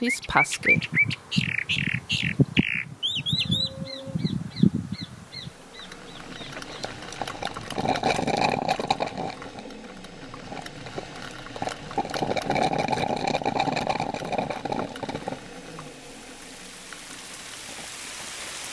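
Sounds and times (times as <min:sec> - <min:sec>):
speech: 0:00.0 - 0:02.4
calandria mockingbird singing: 0:00.0 - 0:07.1
steady rushing rain-like hiss: 0:04.7 - 0:18.7.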